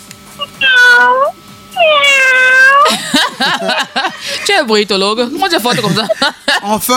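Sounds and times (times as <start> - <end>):
person imitating a sick cat meowing: 0.4 - 3.0
laughter: 2.8 - 4.6, 5.3 - 6.9
speech: 4.5 - 6.9.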